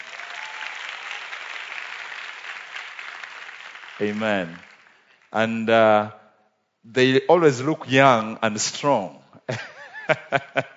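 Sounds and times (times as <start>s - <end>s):
church audience applause: 0.0s - 5.3s
speech: 4.0s - 4.7s, 5.3s - 6.2s, 6.8s - 10.7s
laughter: 9.5s - 10.7s.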